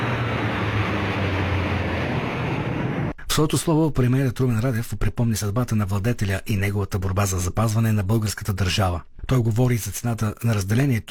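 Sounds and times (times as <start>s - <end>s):
deep low rumble of fighter jets: 0.0s - 3.2s
fighter jets roaring overhead: 0.0s - 3.2s
speech: 3.4s - 11.0s.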